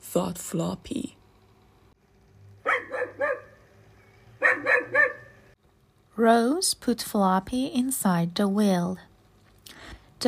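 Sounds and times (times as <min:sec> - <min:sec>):
low hum: 0:00.0 - 0:06.5
speech: 0:00.2 - 0:01.2, 0:06.2 - 0:09.1
dog barking: 0:02.6 - 0:03.6, 0:04.4 - 0:05.4.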